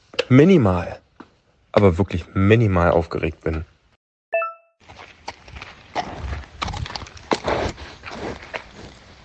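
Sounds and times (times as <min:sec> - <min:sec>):
speech: 0:00.3 - 0:01.0, 0:01.8 - 0:03.7
short chiming tone: 0:04.4 - 0:04.8
horse snorting and blowing: 0:05.9 - 0:09.0.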